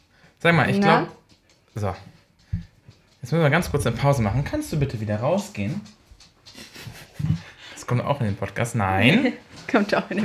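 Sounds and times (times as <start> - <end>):
speech: 0.4 - 1.2, 1.8 - 10.2
dog panting: 1.0 - 10.0
laughter: 6.6 - 7.6.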